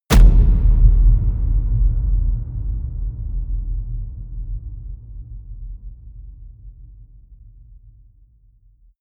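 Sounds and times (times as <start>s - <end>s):
war stomp: 0.1s - 1.9s.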